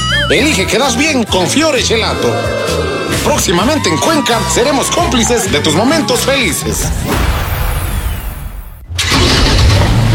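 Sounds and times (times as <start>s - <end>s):
speech: 0.3s - 7.5s
Kia Soluto car engine rumbling and revving: 6.8s - 10.1s.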